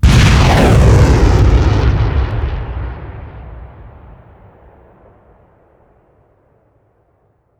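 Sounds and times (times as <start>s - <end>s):
rocket trail whoosh: 0.0s - 4.9s.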